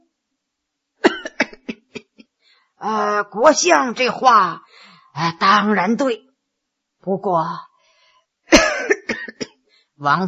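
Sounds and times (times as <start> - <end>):
voice imitating wheezy coughing of an old man with asthma: 1.0 - 2.3, 8.5 - 9.6
speech: 2.8 - 6.3, 7.0 - 7.7, 10.0 - 10.2.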